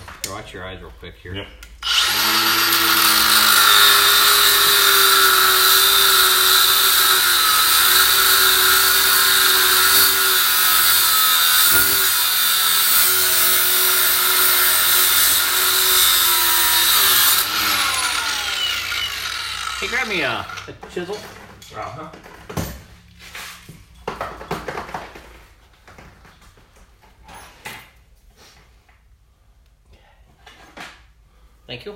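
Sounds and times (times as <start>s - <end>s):
speech: 0.4s - 3.0s, 21.0s - 22.3s
power tool cutting metal tube: 1.8s - 20.8s.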